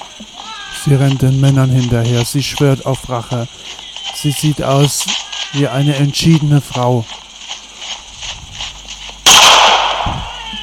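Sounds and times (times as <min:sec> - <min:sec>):
speech: 0:00.8 - 0:07.2
single sharp gunshot with long ringing tail: 0:09.2 - 0:10.2.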